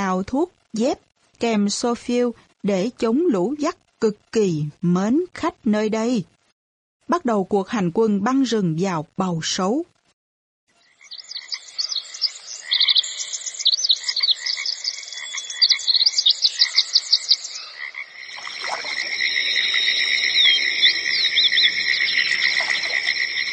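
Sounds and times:
speech: 0.1s - 6.4s, 7.1s - 9.9s
cicadas and insects chirping in a forest: 10.8s - 23.5s.

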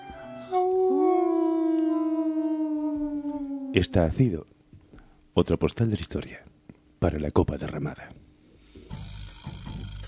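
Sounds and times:
people howling like beasts at the door of a radio station: 0.5s - 4.2s
speech: 3.7s - 4.5s, 5.4s - 8.2s.

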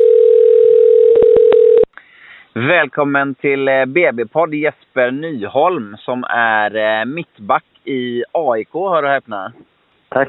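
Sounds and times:
telephone dial tone while placing a call: 0.0s - 1.9s
speech: 2.6s - 10.2s.

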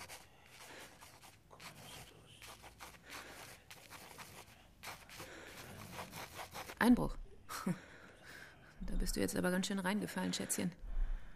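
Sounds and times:
pencil writing on paper: 0.0s - 6.9s
speech: 6.8s - 7.8s, 9.2s - 10.9s.

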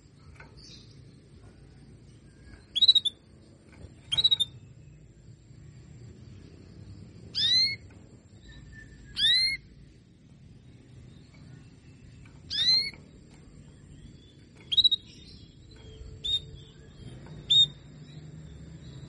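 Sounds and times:
low steady hum: 0.0s - 19.0s
female canary calls: 2.6s - 3.2s, 4.1s - 4.6s, 7.3s - 7.9s, 8.7s - 9.7s, 12.5s - 13.2s, 14.6s - 15.2s.

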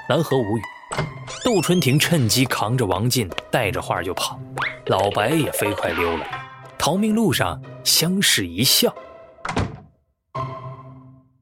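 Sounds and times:
speech: 0.1s - 9.6s
room door being shut: 0.9s - 1.8s, 9.4s - 10.0s.

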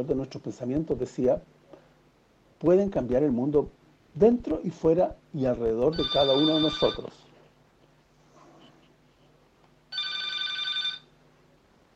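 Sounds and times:
speech: 0.0s - 1.6s, 2.6s - 7.2s
telephone ringing with an electronic trill: 5.9s - 7.1s, 9.9s - 11.2s.

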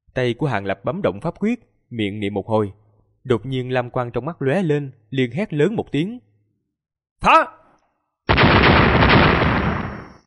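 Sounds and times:
speech: 0.2s - 6.3s, 7.2s - 7.6s
dozens of explosions in a fantasy battle: 8.3s - 10.2s.

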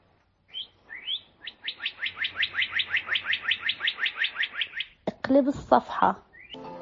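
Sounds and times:
sparrow chirping: 0.5s - 5.0s, 6.3s - 6.6s
speech: 5.3s - 6.3s.

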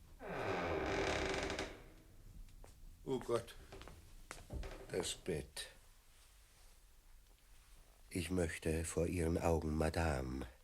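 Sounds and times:
wooden door creaking open on its hinge: 0.2s - 2.1s
speech: 3.1s - 3.7s, 4.9s - 5.8s, 8.1s - 10.6s.

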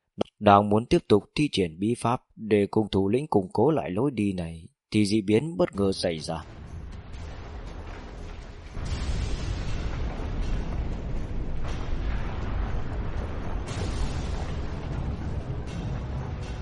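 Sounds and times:
speech: 0.4s - 6.6s
rumbling explosions: 6.4s - 16.6s.

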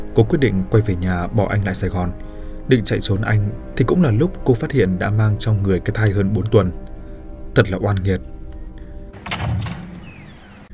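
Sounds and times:
speech: 0.2s - 6.9s, 7.6s - 8.3s
door of neighbouring room opening with squeaky whine: 9.2s - 10.7s.

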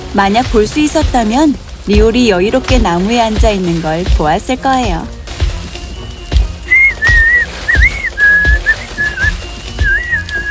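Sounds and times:
speech: 0.1s - 5.2s
low thuds: 2.0s - 10.2s
person whistling: 5.9s - 10.4s.

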